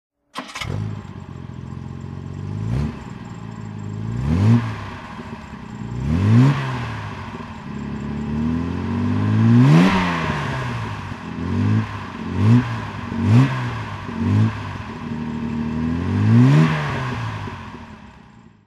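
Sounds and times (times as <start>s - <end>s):
jag E type engine throttle: 0.4s - 18.5s.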